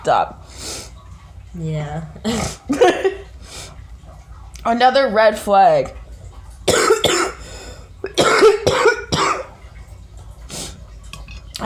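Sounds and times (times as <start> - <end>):
speech: 0.0 - 0.9, 1.5 - 3.7, 4.6 - 6.0
person coughing after smoking a toke: 6.7 - 7.4, 8.1 - 9.5.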